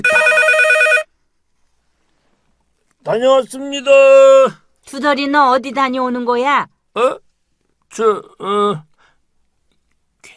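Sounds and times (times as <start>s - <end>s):
telephone with bright trilling electronic ring: 0.0s - 1.1s
speech: 3.1s - 7.2s, 7.9s - 8.9s.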